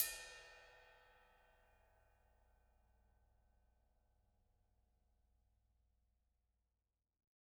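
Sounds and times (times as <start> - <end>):
drum kit ride cymbal: 0.0 - 0.5.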